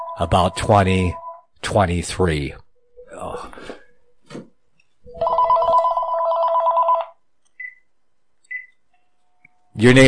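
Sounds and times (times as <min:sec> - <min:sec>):
telephone ringing: 0:00.0 - 0:01.4, 0:05.1 - 0:07.2
speech: 0:00.2 - 0:02.6, 0:09.8 - 0:10.0.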